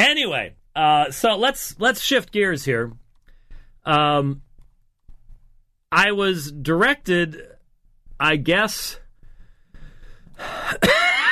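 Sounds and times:
speech: 0.0 - 3.0, 3.8 - 4.4, 5.9 - 7.5, 8.2 - 9.0, 10.4 - 11.0
person coughing from a throat tickle: 10.4 - 11.3.

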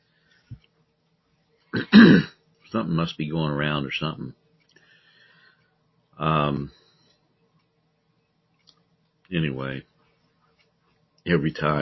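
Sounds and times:
cough: 1.8 - 2.4
throat clearing: 1.8 - 2.4
speech: 1.9 - 4.4, 6.2 - 6.8, 9.3 - 9.9, 11.2 - 11.8.

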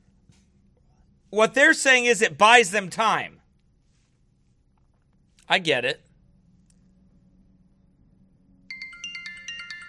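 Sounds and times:
faint low hum: 0.0 - 9.0
speech: 1.3 - 3.4, 5.5 - 6.0
phone ringtone with bright chiming electronic notes: 8.7 - 9.8.

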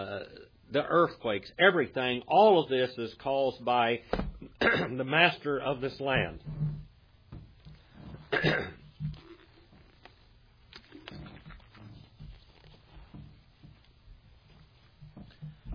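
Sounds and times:
speech: 0.7 - 6.6, 8.4 - 8.8
person coughing: 4.4 - 5.0, 8.3 - 8.8
throat clearing: 4.5 - 5.0, 8.3 - 8.8.

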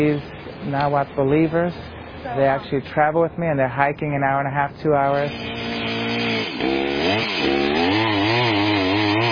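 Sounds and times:
speech: 0.0 - 5.7
chainsaw cutting down a tree in the mountains: 5.1 - 9.3.

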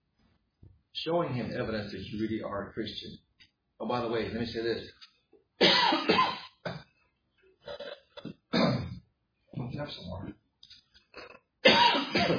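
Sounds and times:
speech: 1.0 - 6.3, 9.8 - 10.4
person coughing harshly: 5.6 - 6.9, 7.7 - 9.0, 11.2 - 12.3
throat clearing: 7.7 - 9.0, 11.2 - 12.3.

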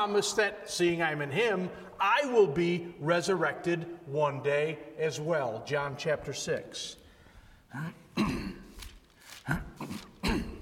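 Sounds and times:
speech: 0.0 - 7.0, 7.7 - 8.4, 9.5 - 10.0
throat-clearing bursts: 7.7 - 10.6
short harsh coughs: 7.8 - 10.6.

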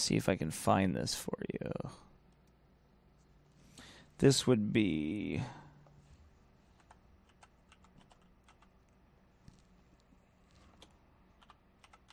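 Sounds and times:
speech: 0.0 - 2.1, 4.2 - 5.6
low steady hum: 0.0 - 12.1
slow uneven computer keyboard typing: 6.8 - 9.6, 10.5 - 12.1.

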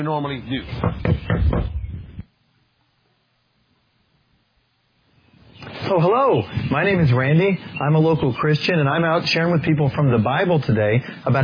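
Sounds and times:
speech: 0.0 - 1.7, 5.9 - 11.4
firm knocks on a wooden door: 0.8 - 1.9.

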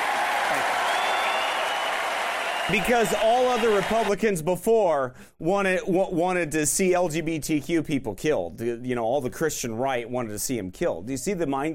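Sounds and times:
audience clapping for a speaker: 0.0 - 4.2
speech: 2.7 - 11.7.

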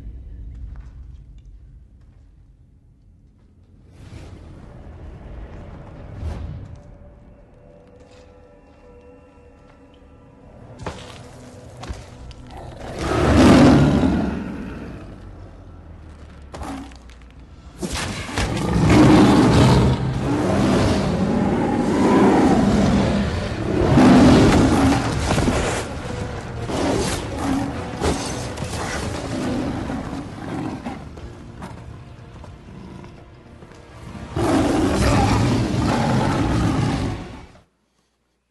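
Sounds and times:
lions snarling and roaring in a fight: 12.4 - 15.4, 17.8 - 31.8, 34.3 - 37.6.

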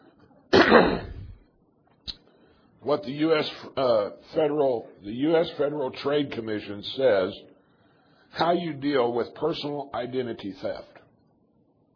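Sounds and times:
person coughing after swallowing a cough drop: 0.5 - 1.4
speech: 0.7 - 1.1, 2.8 - 7.5, 8.3 - 11.0.

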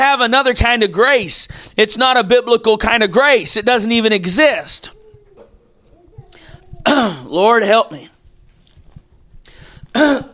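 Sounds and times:
speech: 0.0 - 5.0, 6.8 - 8.1, 10.0 - 10.3
raspy throat clearing: 6.8 - 7.3, 9.9 - 10.3
loud harsh cough: 6.9 - 7.3, 9.9 - 10.3.

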